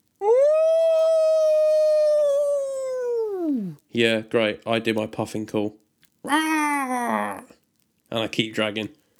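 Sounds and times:
distant lone animal howl rising out of the woods: 0.2s - 3.8s
speech: 4.0s - 6.4s, 8.2s - 9.0s.

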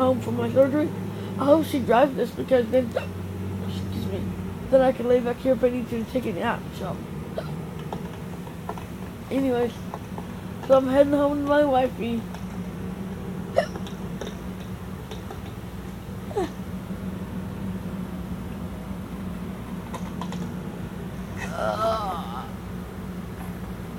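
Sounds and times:
steady low engine-like drone: 0.0s - 23.9s
speech: 0.1s - 7.6s, 9.3s - 9.9s, 10.7s - 12.4s
person hiccuping: 7.4s - 7.6s, 13.5s - 13.9s.

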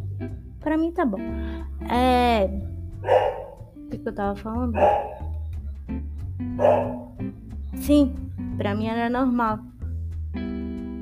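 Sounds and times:
speech: 0.2s - 5.2s, 5.9s - 9.7s
dogs barking from a kennel: 3.0s - 3.8s, 4.7s - 5.6s, 6.5s - 7.3s.

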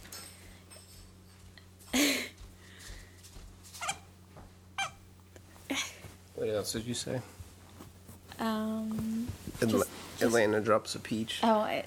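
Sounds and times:
low steady hum: 0.0s - 11.8s
dog yelping: 3.8s - 4.1s, 4.8s - 5.0s
squeaky dog yips: 3.8s - 4.1s, 4.8s - 5.0s
speech: 5.8s - 7.4s, 8.4s - 11.8s.

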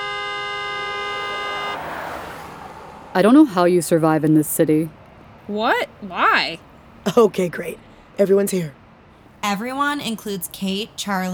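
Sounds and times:
car horn blaring: 0.0s - 2.3s
vehicle passing: 0.0s - 11.3s
speech: 3.2s - 8.8s, 9.4s - 11.3s.

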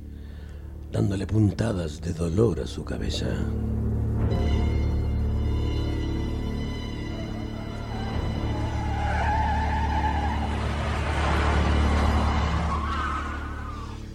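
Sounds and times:
speech: 0.9s - 4.4s
car engine droning while driving over rough pavement: 3.6s - 14.1s
tire squeal: 6.0s - 14.1s
car body rattling and shaking on rough pavement: 8.8s - 13.9s.

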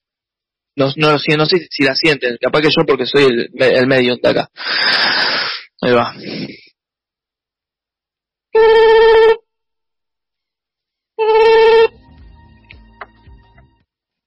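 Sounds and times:
speech: 0.8s - 6.6s, 8.6s - 9.0s
telephone ringing with a loud steady electronic tone: 8.6s - 9.4s, 11.2s - 11.9s.

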